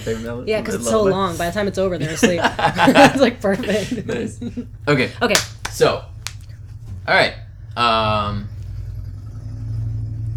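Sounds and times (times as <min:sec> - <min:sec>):
speech: 0:00.0 - 0:06.1, 0:07.1 - 0:08.5
laughter: 0:01.8 - 0:05.0
motorcycle engine rumbling passing by: 0:07.7 - 0:10.3.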